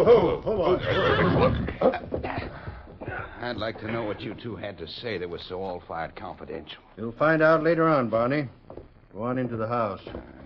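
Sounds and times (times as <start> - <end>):
speech: 0.0 - 2.2, 3.4 - 8.6, 9.2 - 10.4
horses whinnying as horsemen rein up: 0.2 - 4.2.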